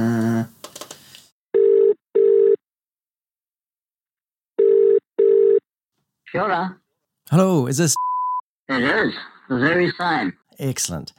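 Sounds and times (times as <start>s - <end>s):
telephone ringing while dialing a mobile number: 1.6s - 2.6s, 4.6s - 5.6s
speech: 6.3s - 8.1s, 8.7s - 11.1s.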